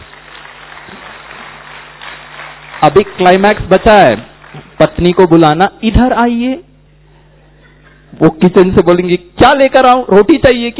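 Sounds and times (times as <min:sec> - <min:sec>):
audience applause at a live performance: 0:00.0 - 0:05.1
speech: 0:02.8 - 0:06.7, 0:08.2 - 0:10.7.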